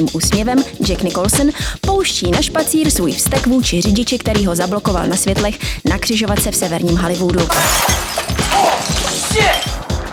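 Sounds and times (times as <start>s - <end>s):
speech: 0.0s - 8.6s
golf club smashing a car windshield: 7.5s - 9.8s.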